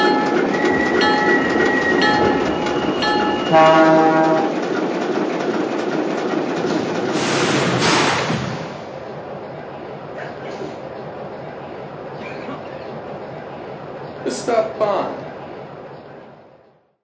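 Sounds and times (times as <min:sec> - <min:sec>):
passenger train rumbling with a broad roaring hiss: 0:00.0 - 0:16.8
passenger train horn in drawn-out tonal blasts: 0:03.3 - 0:04.6
speech: 0:03.5 - 0:04.0.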